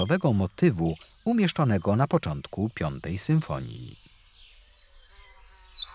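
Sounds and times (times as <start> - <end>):
ortolan bunting song of repeated high notes dropping lower: 0.0 - 4.0
speech: 0.0 - 4.0.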